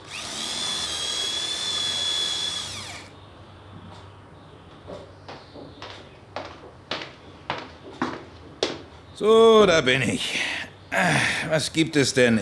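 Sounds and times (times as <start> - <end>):
power drill boring a hole: 0.0 - 3.1
speech: 9.2 - 12.4.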